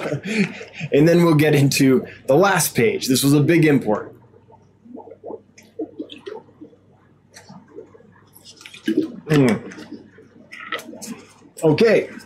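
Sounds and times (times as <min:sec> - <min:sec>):
speech: 0:00.0 - 0:04.2, 0:08.9 - 0:09.8, 0:11.6 - 0:12.2
person sipping and swallowing water: 0:04.4 - 0:11.6.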